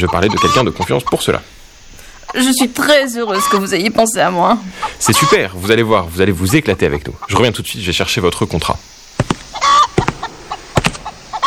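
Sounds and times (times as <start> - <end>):
speech: 0.0 - 1.6, 2.3 - 8.9
hens clucking at a breeder's farm: 0.0 - 11.4.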